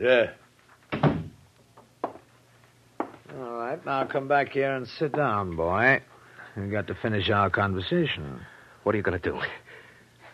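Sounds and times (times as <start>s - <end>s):
speech: 0.0s - 1.1s, 3.7s - 9.7s
door shutting with a heavy thud: 0.9s - 1.4s.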